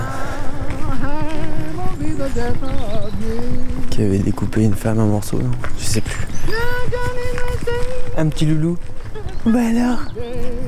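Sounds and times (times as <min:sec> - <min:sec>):
horse hooves clip-clopping: 0:00.0 - 0:10.6
speech: 0:02.3 - 0:06.3, 0:08.2 - 0:10.5.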